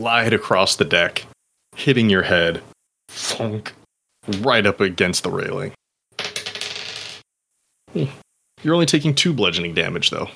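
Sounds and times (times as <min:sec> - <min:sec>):
speech: 0:00.0 - 0:05.8, 0:07.9 - 0:10.3
dice tumbling across a hard surface: 0:06.2 - 0:07.2.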